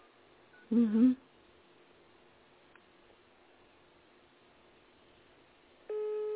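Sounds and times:
hiss: 0:00.0 - 0:06.3
speech: 0:00.7 - 0:01.2
steady telephone line tone during a phone call: 0:05.9 - 0:06.3.

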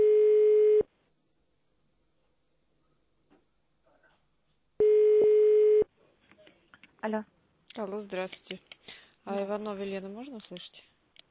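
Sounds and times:
telephone line tones after pressing three on a phone menu: 0:00.0 - 0:00.8, 0:04.8 - 0:05.9
speech: 0:07.1 - 0:10.9.

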